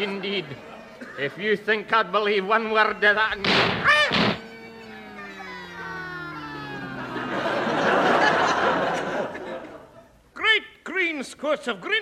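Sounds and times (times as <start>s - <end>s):
speech: 0.0s - 3.9s, 11.4s - 11.9s
laughter: 0.0s - 10.2s
short warbling vocal yelps: 2.8s - 8.5s
long descending whistle: 3.0s - 8.3s.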